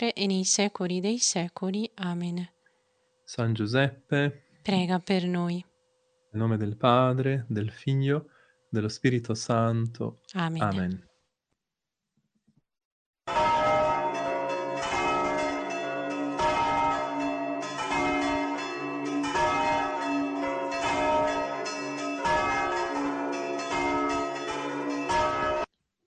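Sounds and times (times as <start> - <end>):
speech: 0.0 - 2.6, 3.3 - 5.7, 6.3 - 11.1
Easter church bells ringing: 13.3 - 25.7.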